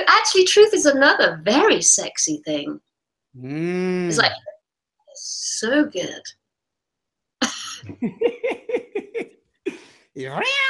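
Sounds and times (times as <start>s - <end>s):
speech: 0.0s - 4.5s, 5.2s - 6.4s, 7.4s - 10.6s
short clipped vocal bursts: 3.4s - 4.2s, 9.7s - 10.4s
laughter: 7.7s - 10.4s
cat meowing: 10.2s - 10.6s.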